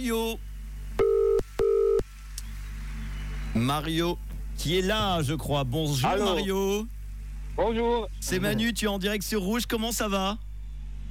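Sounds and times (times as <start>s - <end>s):
speech: 0.0s - 0.5s, 3.6s - 7.0s, 7.6s - 10.4s
faint low hum: 0.0s - 11.0s
ringback tone of an outgoing telephone call: 1.0s - 2.0s.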